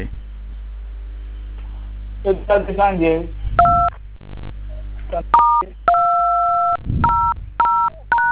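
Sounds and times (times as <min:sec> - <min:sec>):
low hum: 0:00.0 - 0:08.3
telephone keypad tones from a caller pressing phone buttons during a call: 0:05.4 - 0:08.3.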